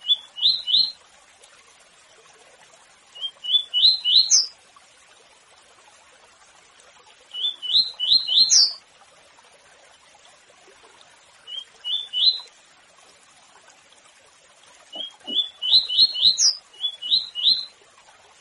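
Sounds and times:
seedeater song of clear rising whistled notes: 0.0s - 1.0s, 3.2s - 4.5s, 7.4s - 8.8s, 11.5s - 12.5s, 14.9s - 17.7s.

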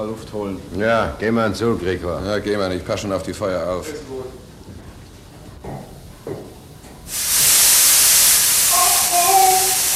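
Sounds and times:
speech: 0.0s - 4.5s
steam hissing from a burst steam pipe on a ship: 7.1s - 9.9s.

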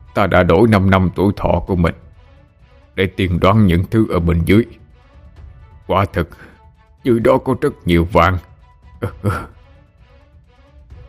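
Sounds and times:
speech: 0.2s - 2.0s, 3.0s - 4.8s, 5.9s - 9.6s
man coughing: 9.0s - 9.6s.

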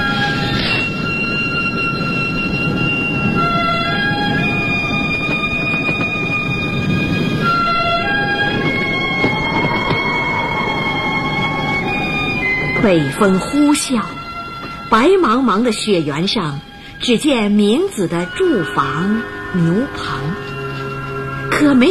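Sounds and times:
high squealing or whistle-like train tones: 0.0s - 21.8s
train running with a loud rumbling roll: 0.0s - 21.8s
speech: 12.8s - 14.2s, 14.9s - 20.3s, 21.6s - 21.8s.

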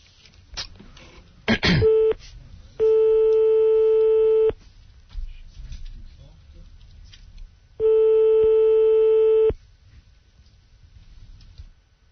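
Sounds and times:
faint noise: 0.0s - 12.0s
telephone ringing tones: 2.8s - 4.6s, 7.8s - 9.6s.

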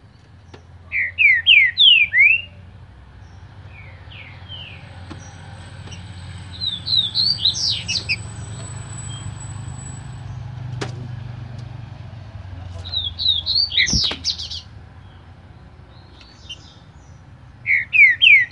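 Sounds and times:
low traffic-like rumble: 0.0s - 18.5s
Green-winged saltator singing slurred looping whistles: 0.9s - 2.6s, 6.5s - 10.0s, 13.0s - 14.6s, 17.6s - 18.5s.

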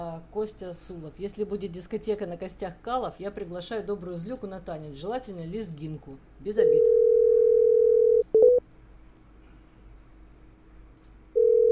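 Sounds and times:
speech: 0.3s - 7.0s
telephone dial tone: 6.8s - 8.6s, 11.4s - 11.6s.

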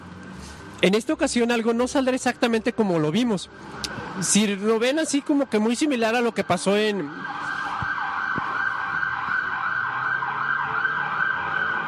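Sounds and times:
faint rumble of road traffic: 0.0s - 11.8s
speech: 0.8s - 7.5s
ambulance siren wailing in rising-and-falling sweeps: 3.5s - 11.8s.

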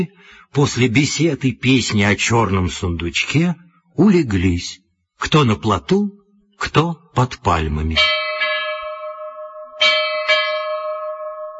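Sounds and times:
speech: 0.0s - 8.2s
copper ship's bell struck: 8.0s - 11.5s.

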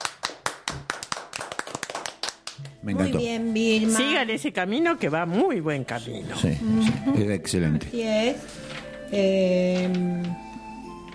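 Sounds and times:
small audience group clapping: 0.0s - 3.0s
speech: 2.8s - 10.4s.

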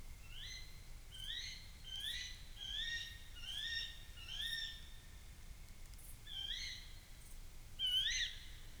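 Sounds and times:
female tawny owl squealing calls at night in France: 0.2s - 5.0s, 6.3s - 7.0s, 7.8s - 8.7s.

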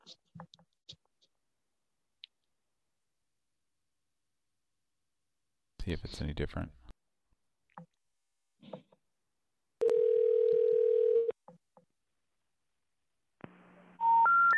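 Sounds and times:
speech: 0.0s - 0.5s, 5.8s - 6.9s
long steady telephone line tone: 9.8s - 11.3s.

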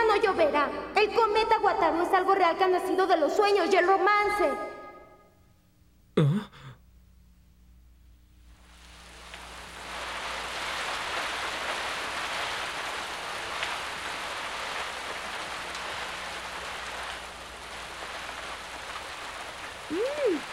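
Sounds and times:
speech: 0.1s - 4.7s
brief breathy sound: 6.2s - 6.8s
rain falling: 8.4s - 20.5s.

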